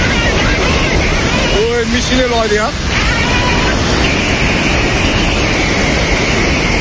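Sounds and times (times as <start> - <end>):
person's voice: 0.0 - 3.9
floodwater and mud rushing down in Nepal: 0.0 - 6.7.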